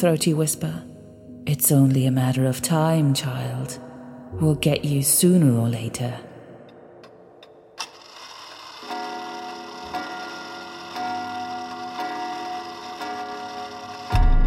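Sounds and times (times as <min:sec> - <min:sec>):
speech: 0:00.0 - 0:00.9, 0:01.5 - 0:06.3
old clock ticking: 0:07.0 - 0:14.3.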